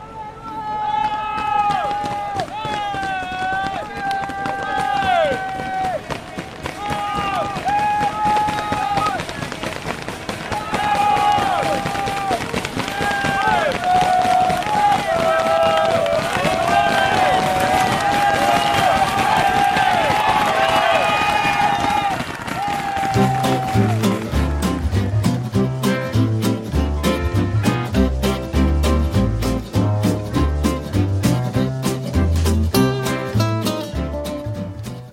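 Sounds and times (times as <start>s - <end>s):
dense roadside crowd of fans cheering passing race cyclists: 0.0s - 34.2s
steady music: 23.2s - 35.1s.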